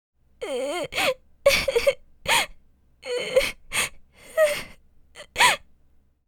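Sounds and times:
anime girl crying vocalization: 0:00.4 - 0:05.6.

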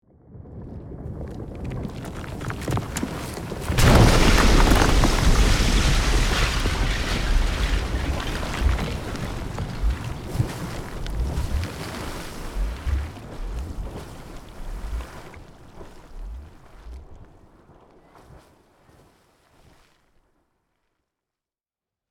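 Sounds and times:
volcano lava eruption explosion: 0:00.3 - 0:15.1
volcanic eruption debris: 0:01.4 - 0:15.3.

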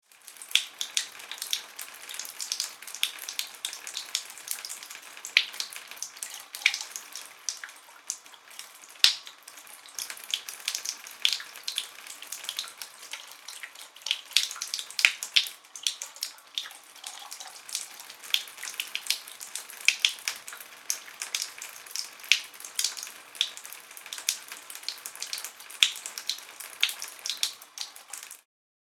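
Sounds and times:
shower running indoors with low water pressure: 0:00.0 - 0:28.5.

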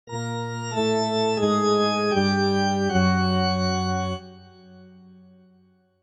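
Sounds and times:
cartoon church organ: 0:00.1 - 0:05.8.

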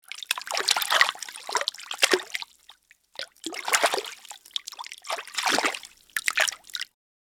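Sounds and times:
water moving in bathtub: 0:00.0 - 0:06.9.

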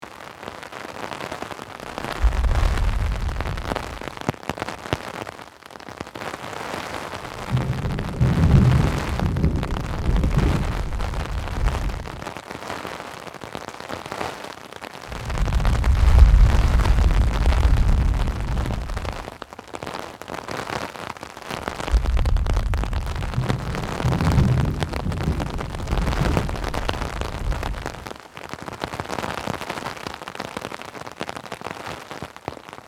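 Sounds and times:
rain on umbrella: 0:00.0 - 0:32.8
thunder: 0:01.9 - 0:04.3, 0:07.2 - 0:12.3, 0:15.1 - 0:19.4, 0:21.6 - 0:28.2.

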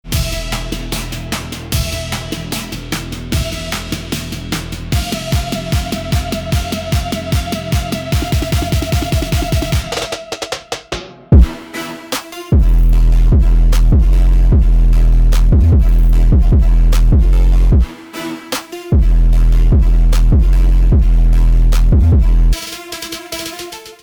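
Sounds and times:
boosted bass: 0:00.0 - 0:10.0, 0:12.6 - 0:17.9, 0:19.0 - 0:22.6.

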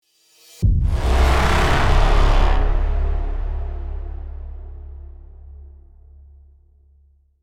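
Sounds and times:
cinematic braam hit impact: 0:00.6 - 0:06.6.

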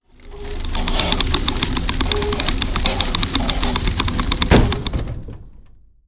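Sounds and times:
medieval castle drawbridge lowering: 0:00.1 - 0:05.3.

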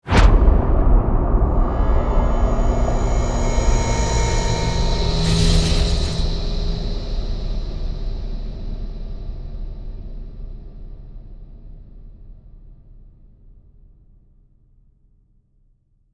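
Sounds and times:
epic cinematic impact: 0:00.1 - 0:09.2.

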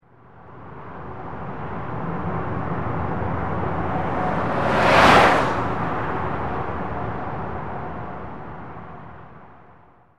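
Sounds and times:
car passing by on a highway: 0:01.3 - 0:08.6.

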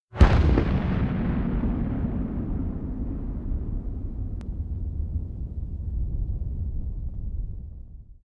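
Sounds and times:
nuclear explosion deep rumbling: 0:00.1 - 0:08.2.

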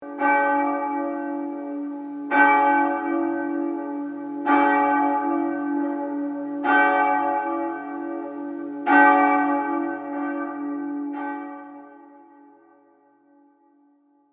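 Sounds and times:
church bells ringing close: 0:00.0 - 0:13.9.

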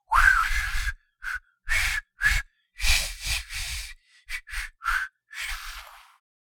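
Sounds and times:
man trying to whistle: 0:00.1 - 0:02.4, 0:04.3 - 0:05.6.

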